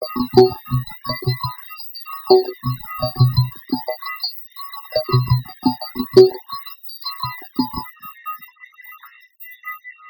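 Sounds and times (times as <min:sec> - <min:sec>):
abstract plinging synth rhythm: 0:00.0 - 0:01.5, 0:02.3 - 0:04.0, 0:04.9 - 0:06.5, 0:07.2 - 0:07.9.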